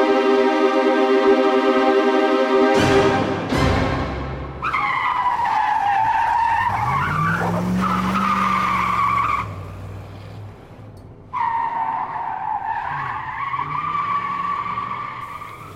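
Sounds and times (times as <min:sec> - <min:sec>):
low roar of a racing car engine: 0:00.0 - 0:15.7
car tires squealing through turns: 0:04.6 - 0:15.7.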